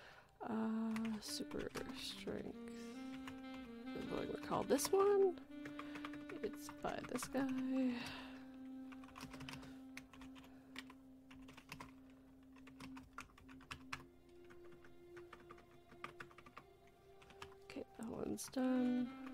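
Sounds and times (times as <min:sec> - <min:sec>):
speech: 0:00.4 - 0:03.0, 0:04.0 - 0:05.8, 0:06.4 - 0:08.3, 0:09.2 - 0:09.5, 0:18.4 - 0:19.2
steady low electronic hum: 0:00.4 - 0:19.3
typing on a computer keyboard: 0:00.9 - 0:02.0, 0:04.7 - 0:07.7, 0:09.0 - 0:16.6, 0:17.2 - 0:17.6.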